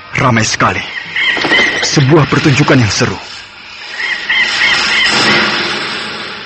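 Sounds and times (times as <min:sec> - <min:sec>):
hissing noise: 0:00.0 - 0:06.4
speech: 0:00.2 - 0:03.3
drongo calling: 0:00.8 - 0:02.7, 0:03.7 - 0:05.2.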